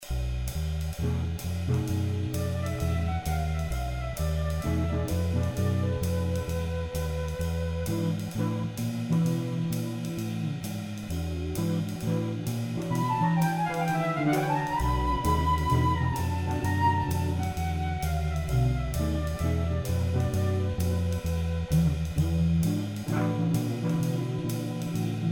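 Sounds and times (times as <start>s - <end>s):
jazz sample loop: 0.0s - 25.3s.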